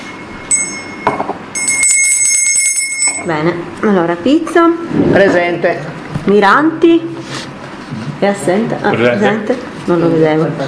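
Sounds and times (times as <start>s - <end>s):
small bell ringing: 0.1s - 3.4s
speech: 3.2s - 7.4s, 8.2s - 10.6s.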